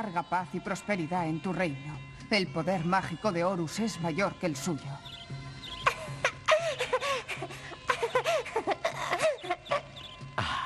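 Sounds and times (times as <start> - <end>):
speech: 0.0 - 5.4
little birds chirping and warbling: 3.9 - 10.6.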